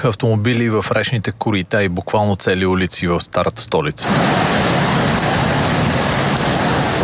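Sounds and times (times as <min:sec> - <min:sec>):
speech: 0:00.0 - 0:05.3
heavy rain pouring down over the Veliko Tarnovo region: 0:04.0 - 0:07.0.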